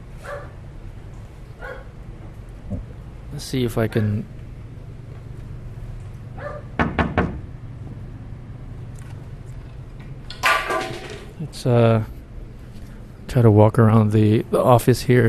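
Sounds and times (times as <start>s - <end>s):
low steady hum: 0.0s - 15.2s
dog barking in an office: 0.2s - 0.6s, 1.6s - 1.9s, 6.4s - 6.8s
speech: 3.4s - 4.4s, 11.6s - 12.2s, 13.3s - 15.2s.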